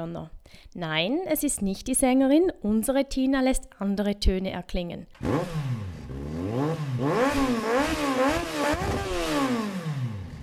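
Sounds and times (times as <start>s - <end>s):
speech: 0.0s - 5.8s
rally car engines revving: 5.2s - 10.4s.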